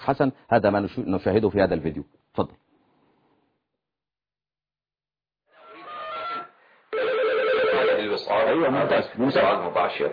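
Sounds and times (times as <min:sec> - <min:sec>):
speech: 0:00.0 - 0:02.7, 0:08.3 - 0:10.1
telephone ringing on an unanswered outgoing call: 0:06.9 - 0:08.4.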